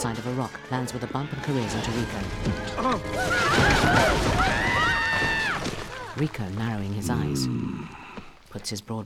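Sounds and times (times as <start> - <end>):
speech: 0.0 - 4.8, 6.2 - 9.0
horses whinnying: 2.7 - 6.2, 6.9 - 8.4
rumble of hooves: 5.0 - 9.0.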